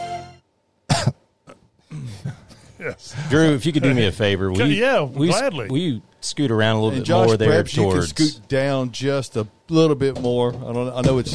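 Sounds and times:
person coughing: 0.9s - 3.0s
throat clearing: 0.9s - 3.0s
speech: 2.0s - 11.3s.

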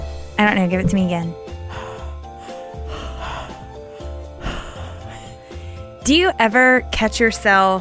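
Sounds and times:
steady tonal musical backdrop: 0.0s - 7.5s
speech: 0.4s - 1.4s, 6.1s - 7.7s
heavy labored breathing after a hard workout: 1.5s - 6.0s.

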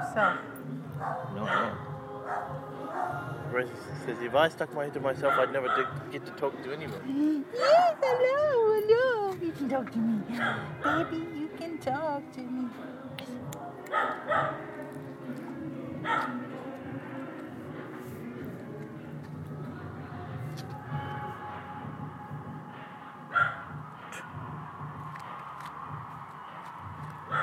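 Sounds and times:
dog barking in short sharp bursts: 0.0s - 3.2s, 5.2s - 6.0s, 10.4s - 11.1s, 13.9s - 14.6s, 16.0s - 16.4s, 23.3s - 23.7s
steady low murmur with faint voices: 0.0s - 27.4s
speech: 0.2s - 14.7s, 16.0s - 16.5s.

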